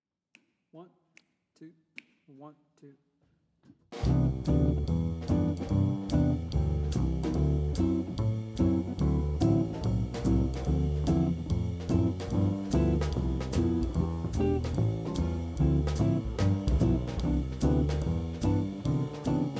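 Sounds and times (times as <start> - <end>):
piano accompaniment: 4.0 - 19.5.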